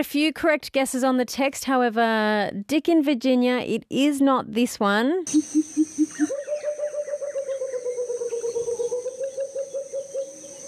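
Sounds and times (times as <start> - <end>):
speech: 0.0 - 5.9
constant high insect drone: 5.3 - 10.6
pheasant cuckoo calling with whistled notes: 5.3 - 10.6.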